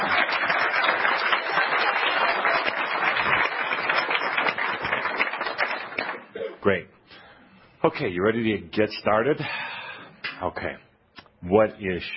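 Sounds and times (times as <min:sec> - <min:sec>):
audience applause: 0:00.0 - 0:06.3
speech: 0:06.7 - 0:06.9, 0:07.8 - 0:09.7, 0:10.4 - 0:12.1.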